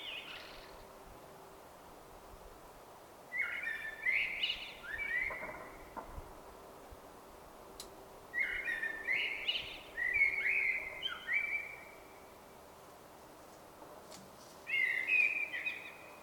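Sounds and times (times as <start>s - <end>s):
common blackbird song in Sweden: 0.0s - 0.9s, 3.3s - 6.1s, 8.3s - 12.3s, 14.6s - 16.2s
quiet background noise: 0.0s - 16.2s.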